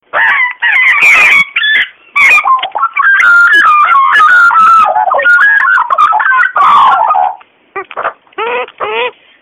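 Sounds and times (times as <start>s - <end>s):
Gymnorhina tibicen calling: 0.3s - 7.4s.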